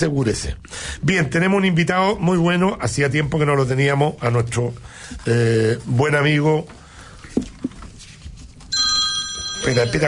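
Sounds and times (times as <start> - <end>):
speech: 0.0 - 6.8, 9.6 - 10.0
telephone ringing: 8.7 - 10.0.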